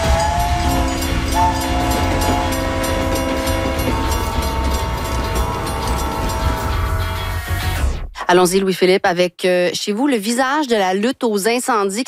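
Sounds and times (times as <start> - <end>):
train rumbling past with rolling rail noise: 0.0 - 7.8
speech: 8.3 - 12.0.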